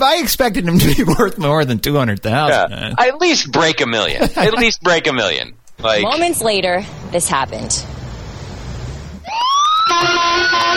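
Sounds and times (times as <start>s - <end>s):
speech: 0.0s - 8.0s, 9.9s - 10.7s
laughter: 4.1s - 4.8s
low street rumble: 5.8s - 9.2s
ambulance siren wailing as it pulls out of a courthouse: 9.2s - 10.7s.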